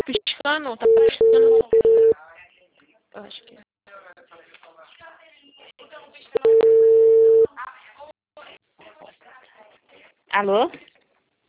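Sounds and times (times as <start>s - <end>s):
speech: 0.4s - 1.9s, 3.2s - 3.6s, 10.4s - 10.8s
telephone busy tone after a dropped call: 0.8s - 2.2s, 6.4s - 7.5s.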